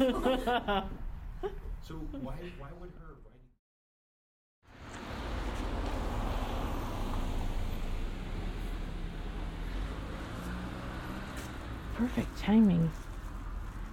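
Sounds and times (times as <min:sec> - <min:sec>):
laughter: 0:00.0 - 0:02.4
speech: 0:00.0 - 0:03.3, 0:12.0 - 0:13.1
car driving past outdoors: 0:04.7 - 0:13.1.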